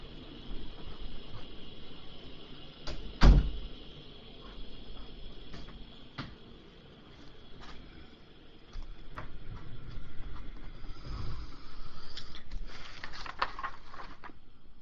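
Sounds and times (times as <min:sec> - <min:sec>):
quiet hissing room background: 0:00.0 - 0:14.8
door shutting with a thump: 0:02.9 - 0:03.7.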